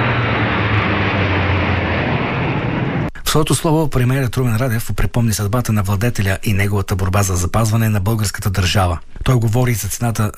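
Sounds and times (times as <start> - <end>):
fighter jets roaring overhead above a capital during a state ceremony: 0.0 - 3.1
speech: 3.3 - 10.3.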